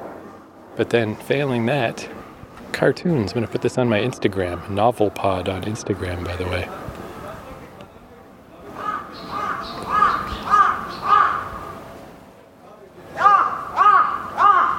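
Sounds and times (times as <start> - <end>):
speech: 0.8 - 6.9
crow cawing: 8.8 - 11.7, 13.2 - 14.7.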